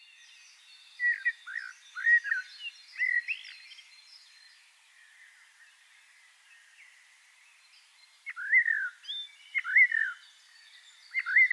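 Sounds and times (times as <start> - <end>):
Eurasian blackbird Turdus merula singing soft slurred whistled notes: 0.0 - 4.5, 8.2 - 11.5.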